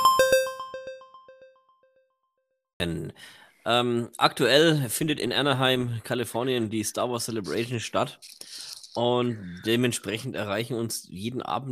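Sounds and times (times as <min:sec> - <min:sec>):
news segment jingle of bright chime notes: 0:00.0 - 0:01.6
speech: 0:02.8 - 0:11.7.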